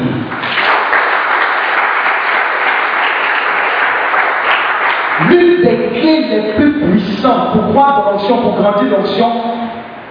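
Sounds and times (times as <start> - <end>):
large crowd applauding: 0.3 - 5.4
speech: 5.3 - 9.6.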